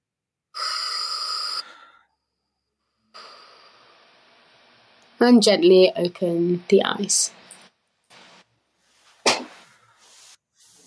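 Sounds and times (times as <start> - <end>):
deep breath in and release: 0.6 - 4.3, 9.6 - 10.8
speech: 5.2 - 7.4.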